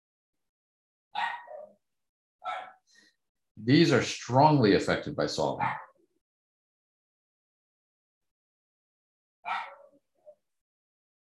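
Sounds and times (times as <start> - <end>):
dogs barking: 1.2 - 1.8, 2.4 - 2.8, 5.6 - 6.0, 9.4 - 10.4
speech: 3.6 - 5.8.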